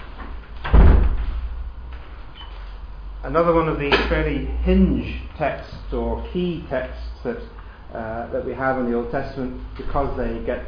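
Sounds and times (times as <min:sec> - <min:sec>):
quiet hum: 0:00.0 - 0:10.6
door pushed shut with a solid low thud: 0:00.6 - 0:01.4
speech: 0:03.2 - 0:10.6.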